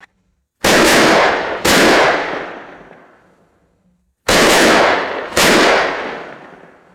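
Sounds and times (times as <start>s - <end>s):
outdoor rifle shots: 0.6s - 3.4s, 4.3s - 6.9s.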